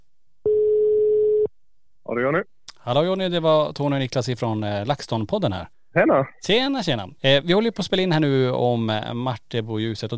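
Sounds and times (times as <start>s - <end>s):
telephone ringback tone: 0.5s - 1.5s
speech: 2.1s - 10.1s.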